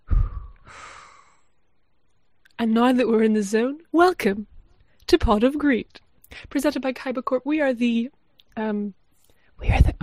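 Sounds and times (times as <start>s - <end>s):
person breathing in and out: 0.0s - 1.6s
speech: 2.6s - 4.5s, 5.1s - 9.0s, 9.6s - 10.0s.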